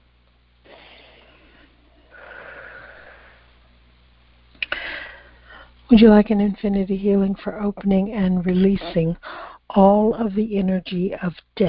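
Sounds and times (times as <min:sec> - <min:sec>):
deep breath during a guided healing session: 0:00.7 - 0:03.6, 0:04.7 - 0:05.8, 0:09.2 - 0:09.7
speech: 0:05.9 - 0:11.6.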